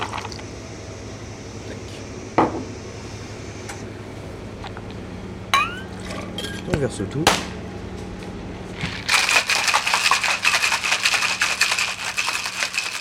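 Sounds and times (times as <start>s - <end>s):
low hum: 0.0s - 13.0s
speech: 6.8s - 7.5s
ice clinking against a cocktail shaker: 8.8s - 13.0s.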